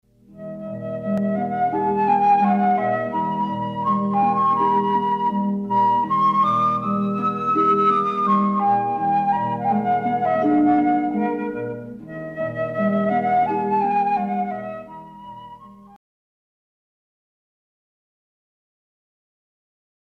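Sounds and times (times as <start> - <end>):
harp: 0.3 - 16.0
woodwind transverse flute: 0.3 - 16.0.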